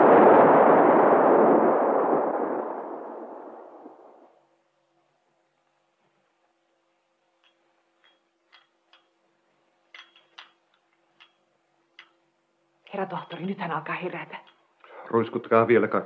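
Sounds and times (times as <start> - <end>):
loud booming explosion: 0.0 - 4.3
speech: 13.0 - 14.4, 15.1 - 16.0.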